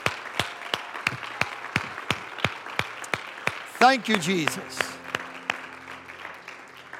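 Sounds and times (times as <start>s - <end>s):
audience clapping hands in praise: 0.0s - 6.9s
speech: 3.8s - 5.0s.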